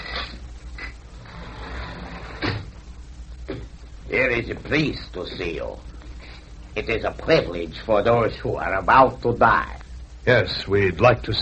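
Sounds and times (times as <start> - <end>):
door creaking and clunking open: 0.0 - 2.7
short knocks and scrapes: 0.0 - 2.8
loud thud: 2.4 - 2.8
speech: 4.1 - 5.9, 6.8 - 11.4.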